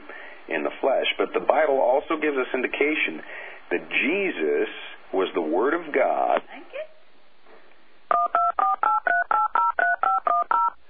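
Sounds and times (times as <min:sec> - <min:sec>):
speech: 0:00.5 - 0:06.9
telephone touch-tone beeps from an incoming call on another phone: 0:08.1 - 0:10.8.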